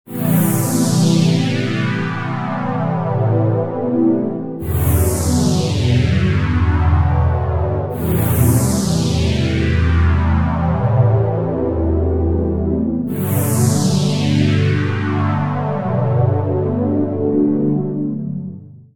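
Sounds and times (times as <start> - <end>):
microq synth pads: 0.1 - 18.4.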